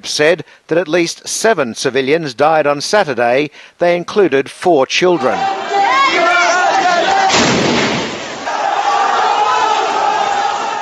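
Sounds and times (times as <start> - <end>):
speech: 0.0 - 6.3
crowd shouting at a street demonstration: 5.2 - 10.8
gunfire at a street demonstration in Rastan, Syria: 7.3 - 8.4
rocket strike on a street demonstration in Rastan, Syria: 7.3 - 8.4.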